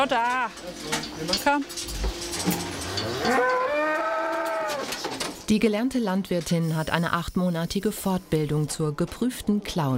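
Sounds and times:
speech: 0:00.0 - 0:03.7, 0:05.5 - 0:09.9
cow mooing: 0:02.8 - 0:04.9.

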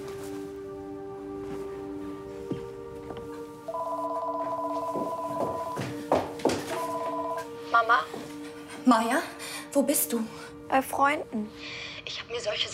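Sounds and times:
telephone ringing as a call is placed: 0:03.7 - 0:05.9, 0:06.7 - 0:08.0
speech: 0:07.8 - 0:08.2, 0:08.8 - 0:12.7.

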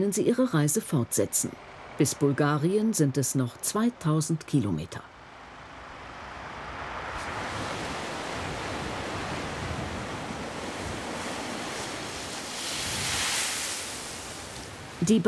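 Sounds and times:
heavy ocean waves about 4 metres high crashing around a ship at sea: 0:00.0 - 0:02.8, 0:05.2 - 0:15.2
speech: 0:00.0 - 0:05.1, 0:15.1 - 0:15.2
steady roar of wind at sea: 0:05.2 - 0:15.1.

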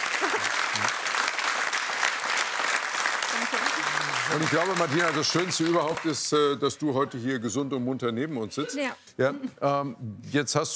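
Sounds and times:
audience applause: 0:00.0 - 0:06.6
speech: 0:04.3 - 0:10.7.

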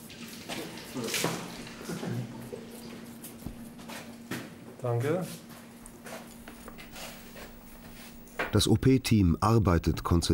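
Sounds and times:
cold water running from a tap into a bucket: 0:00.0 - 0:03.1
low hum: 0:00.2 - 0:10.3
speech: 0:01.0 - 0:02.4, 0:04.8 - 0:05.4, 0:08.5 - 0:10.3.

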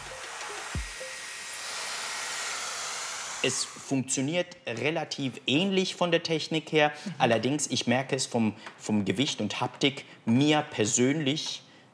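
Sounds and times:
hair styler blowing air with a high whine: 0:00.0 - 0:03.9
speech: 0:03.4 - 0:11.6.

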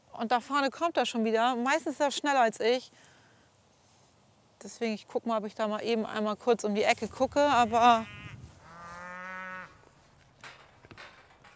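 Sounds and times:
speech: 0:00.2 - 0:03.1, 0:04.6 - 0:08.2
soft rustling: 0:02.0 - 0:10.5
breeding bull in a cattle herd mooing: 0:07.5 - 0:09.8
small knocks: 0:10.2 - 0:11.5.

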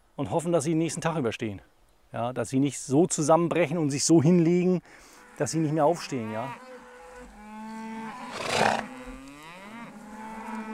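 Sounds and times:
speech: 0:00.2 - 0:06.7
cattle mooing loudly: 0:05.3 - 0:10.7.

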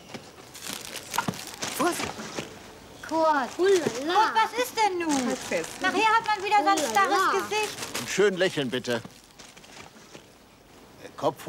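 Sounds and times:
faint scattered rustles: 0:00.1 - 0:10.9
plastic bag crinkling in someone's hands: 0:00.4 - 0:02.0, 0:03.4 - 0:09.9
speech: 0:03.1 - 0:09.2, 0:11.2 - 0:11.4.

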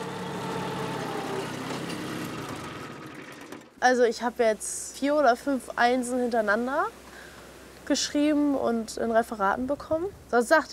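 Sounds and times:
tractor engine running: 0:00.0 - 0:03.8
speech: 0:03.8 - 0:07.0, 0:07.9 - 0:10.7.

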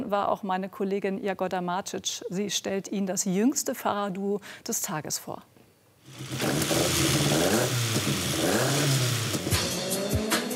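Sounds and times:
speech: 0:00.1 - 0:09.0
rally car engines roaring on a 2.6 km course through a fishing harbour: 0:06.2 - 0:10.2.

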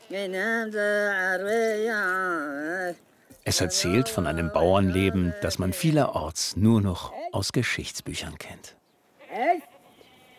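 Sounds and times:
speech: 0:00.1 - 0:09.7
goat bleating while grazing on an island: 0:01.1 - 0:06.0, 0:09.2 - 0:10.3.

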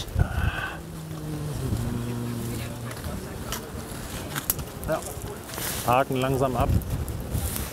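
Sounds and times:
gusty wind buffeting the microphone outdoors: 0:00.0 - 0:07.7
low droning machine hum: 0:00.4 - 0:04.0
speech: 0:04.9 - 0:05.2, 0:05.8 - 0:07.0.

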